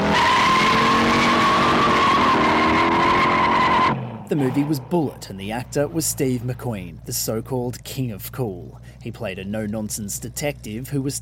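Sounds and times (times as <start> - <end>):
1968 Ford Mustang GT tires screeching from hard skid: 0.0 - 8.1
1968 Ford Mustang GT engine roar: 0.0 - 11.2
speech: 4.3 - 11.2.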